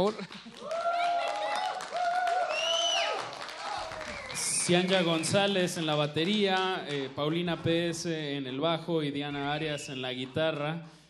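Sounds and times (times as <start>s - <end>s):
speech: 0.0s - 0.5s, 4.7s - 11.0s
crowd applauding a band's live set: 0.0s - 7.8s
crowd loud cheers and whoops: 0.3s - 4.8s.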